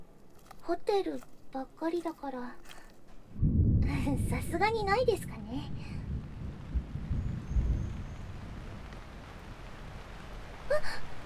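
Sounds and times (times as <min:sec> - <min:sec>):
speech: 0:00.7 - 0:05.8, 0:10.7 - 0:11.0
deep rumble: 0:03.2 - 0:10.7
unforecast rain hissing on a street in an area of hotels: 0:03.4 - 0:11.2.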